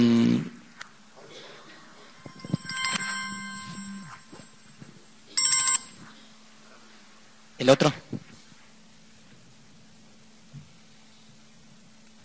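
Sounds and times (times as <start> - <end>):
steady low hum: 0.8 - 6.6
mobile phone ringtone chiming: 2.3 - 4.5, 5.4 - 6.0
speech: 7.6 - 8.2.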